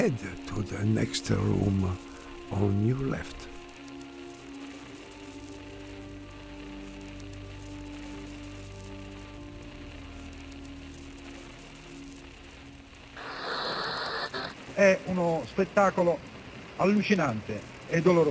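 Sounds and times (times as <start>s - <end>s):
speech: 0.0s - 3.5s, 14.8s - 18.2s
heavy rain falling during flooding in Florence: 0.0s - 18.2s.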